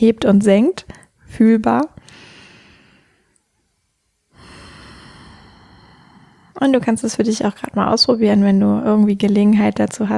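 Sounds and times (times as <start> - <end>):
speech: 0.0 - 2.0, 6.6 - 10.1
deep slow breath into the belly: 2.0 - 3.4, 4.3 - 6.8.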